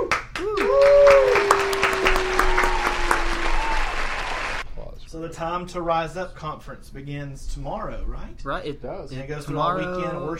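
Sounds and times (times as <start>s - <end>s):
crowd applauding: 0.0s - 4.6s
whistles and cheering: 0.4s - 4.6s
speech: 5.3s - 10.3s.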